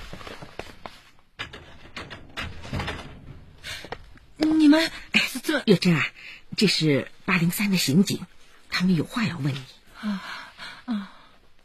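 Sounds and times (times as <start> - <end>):
door being unlatched and pulled open: 1.4 - 4.0
speech: 4.5 - 10.3.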